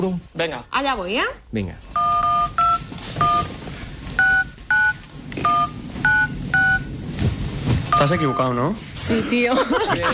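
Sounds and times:
speech: 0.0s - 2.0s, 8.0s - 10.1s
mobile phone keypad beeps playing a birthday song: 2.0s - 3.5s, 4.2s - 6.9s
laughter: 9.2s - 10.1s.

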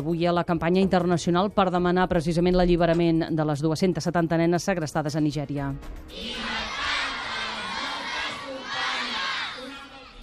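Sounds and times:
speech: 0.0s - 6.6s
large group of schoolchildren shouting in a school playground in Catalonia: 6.1s - 10.2s.

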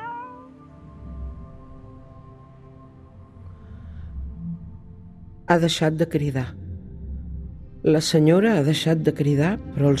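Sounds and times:
female cat meowing in a long wail in a flat in Barcelona: 0.0s - 0.6s
speech: 5.5s - 6.6s, 7.8s - 9.9s.

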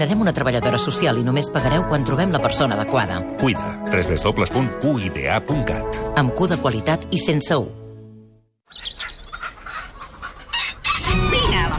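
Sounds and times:
speech: 0.0s - 7.8s
busy farmyard bustle: 8.7s - 11.7s
fowl clucking and chirping: 8.7s - 11.7s
rooster crowing: 10.4s - 11.6s.

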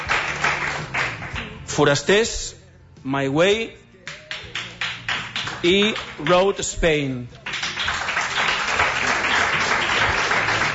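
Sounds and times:
crowd applauding: 0.0s - 1.6s, 4.2s - 6.4s, 7.4s - 10.7s
speech: 1.8s - 3.8s, 5.6s - 7.4s.

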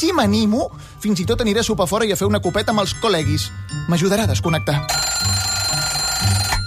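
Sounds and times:
speech: 0.0s - 5.5s
alarm clock ringing with electronic tone: 4.8s - 6.6s.

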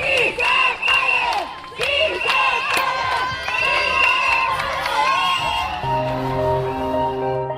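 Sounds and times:
large crowd of housing-rights campaigners chanting outdoors in front of the Parliament: 0.0s - 4.2s
crowd cheering outdoors: 0.0s - 7.4s.

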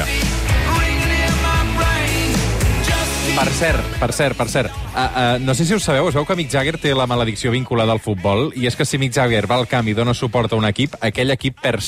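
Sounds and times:
loud dense rock music with heavy bass and distorted guitars: 0.0s - 11.8s
speech: 3.6s - 11.8s.

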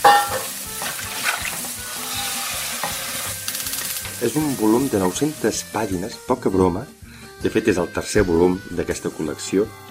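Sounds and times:
utensils knocking against the pan: 0.0s - 1.7s
food frying in a pan: 0.0s - 9.2s
speech: 4.2s - 9.8s.

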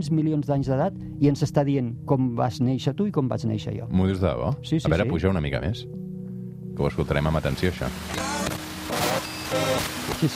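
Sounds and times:
speech: 0.0s - 6.0s, 6.8s - 8.6s, 9.5s - 10.3s
crackling radio static interference: 7.8s - 10.3s.

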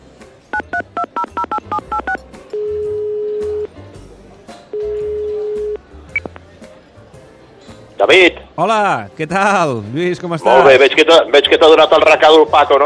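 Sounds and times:
touch-tone keypad beeps as a phone number is dialed: 0.5s - 3.7s, 4.7s - 6.3s
speech: 8.1s - 12.8s.

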